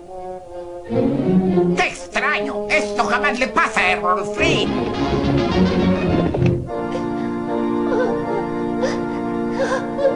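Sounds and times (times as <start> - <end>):
music: 0.0 - 10.1
speech: 0.9 - 5.7
voice actor crying and whimpering for a cartoon character: 7.8 - 10.1.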